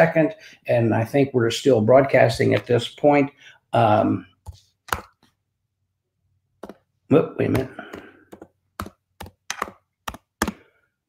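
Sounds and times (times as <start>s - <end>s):
speech: 0.0s - 4.3s, 7.1s - 7.9s
computer keyboard typing: 8.3s - 10.6s.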